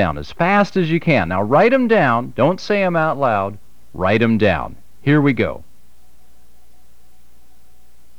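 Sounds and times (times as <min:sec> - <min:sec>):
Morse code practice tone sent at about seven words per minute: 0:00.0 - 0:05.6
speech: 0:00.0 - 0:05.7.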